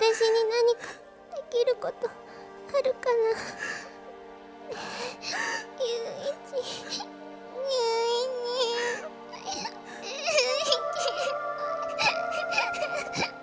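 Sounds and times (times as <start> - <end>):
soft music: 0.0 - 13.4
girl crying: 9.6 - 13.4.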